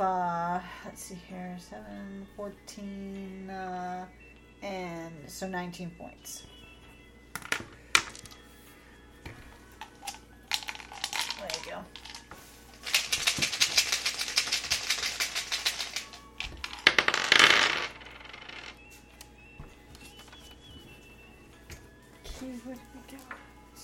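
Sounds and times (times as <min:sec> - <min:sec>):
speech: 0:00.0 - 0:06.5, 0:23.1 - 0:23.6
dice rattling and tumbling across a table during a dice game: 0:07.4 - 0:08.3, 0:09.9 - 0:18.8.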